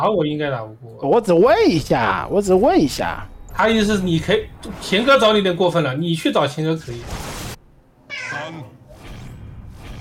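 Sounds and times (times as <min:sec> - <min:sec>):
speech: 0:00.0 - 0:07.3, 0:08.3 - 0:08.8
cat meowing: 0:08.1 - 0:08.7.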